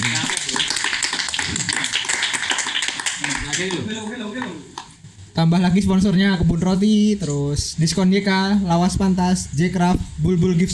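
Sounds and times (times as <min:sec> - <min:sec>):
crowd applauding with hand clapping: 0:00.0 - 0:04.9
speech: 0:03.6 - 0:04.7, 0:05.4 - 0:10.7.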